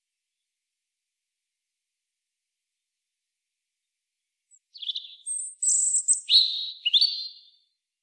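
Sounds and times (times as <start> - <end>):
European robin song: 4.5 - 7.8.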